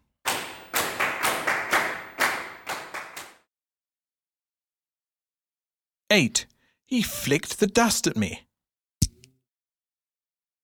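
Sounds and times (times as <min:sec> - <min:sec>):
loud sharp hand claps: 0:00.2 - 0:03.5
speech: 0:06.1 - 0:08.5.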